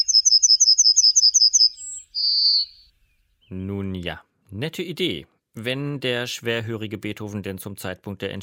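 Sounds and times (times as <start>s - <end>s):
yellowhammer singing: 0.0s - 4.2s
speech: 2.4s - 8.4s.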